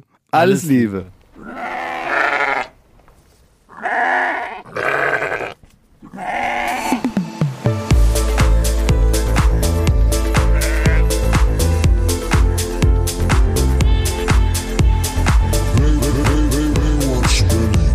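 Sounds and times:
speech: 0:00.3 - 0:01.2
sheep bleating: 0:01.4 - 0:02.8, 0:03.7 - 0:07.0, 0:10.3 - 0:11.3
loud upbeat music with steady drums: 0:07.1 - 0:17.9.

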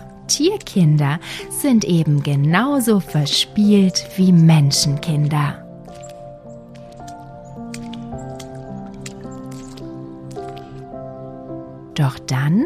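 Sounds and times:
speech: 0:00.3 - 0:05.6, 0:12.0 - 0:12.6
small young fox splashing in puddles: 0:05.8 - 0:10.9.

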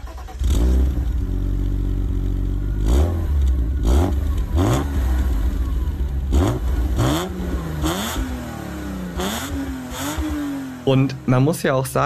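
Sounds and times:
homologation-model car engine starting and roaring through gear changes: 0:00.0 - 0:12.0
speech: 0:10.9 - 0:12.0.

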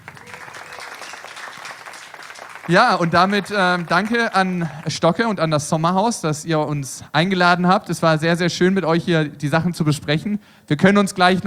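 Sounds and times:
audience applause for five children at a gathering: 0:00.0 - 0:05.3
speech: 0:02.7 - 0:11.4.

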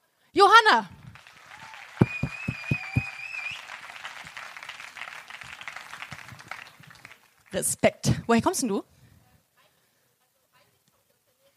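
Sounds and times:
speech: 0:00.4 - 0:01.0, 0:07.5 - 0:08.9
audience applause for an attendee: 0:01.0 - 0:07.6
shrill whistle: 0:01.6 - 0:03.8.

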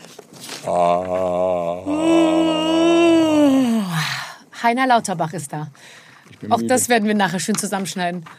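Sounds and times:
speech: 0:00.6 - 0:02.2, 0:04.6 - 0:08.3
person yawning: 0:00.6 - 0:04.0.

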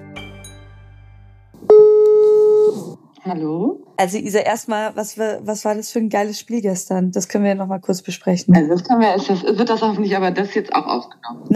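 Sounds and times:
telephone ringback tone beep while calling: 0:01.7 - 0:02.7
speech: 0:03.3 - 0:11.5.

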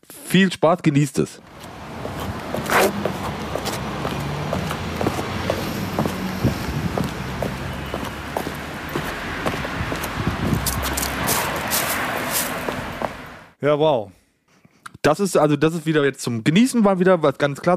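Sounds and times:
speech: 0:00.3 - 0:01.7, 0:02.8 - 0:03.2, 0:13.6 - 0:14.2, 0:15.0 - 0:17.7
low rumble of traffic: 0:01.4 - 0:13.6
sneaker footsteps crunching through dry leaves on a sidewalk, played backwards: 0:01.5 - 0:13.2.

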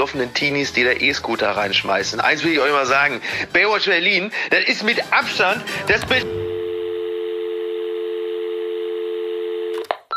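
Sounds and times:
speech: 0:00.0 - 0:06.4
telephone dial tone: 0:06.4 - 0:10.1.

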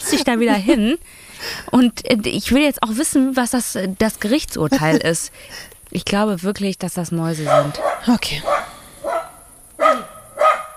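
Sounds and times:
laughter: 0:00.0 - 0:00.8, 0:04.7 - 0:05.2
speech: 0:00.1 - 0:08.6
dog barking: 0:07.4 - 0:10.7.

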